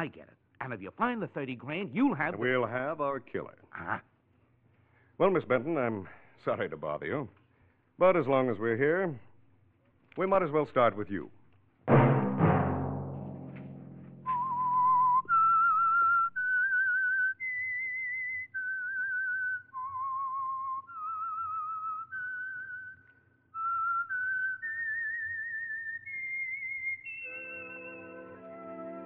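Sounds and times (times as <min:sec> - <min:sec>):
speech: 0:00.0 - 0:04.1, 0:05.2 - 0:07.4, 0:08.0 - 0:09.3, 0:10.2 - 0:12.1
sharp percussive hit: 0:11.9 - 0:14.6
whistled theme melody: 0:14.2 - 0:29.0.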